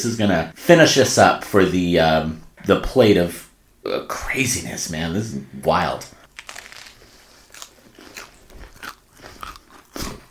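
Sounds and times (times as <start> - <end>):
speech: 0.0 - 6.2
crunchy food being bitten and chewed: 6.3 - 10.3.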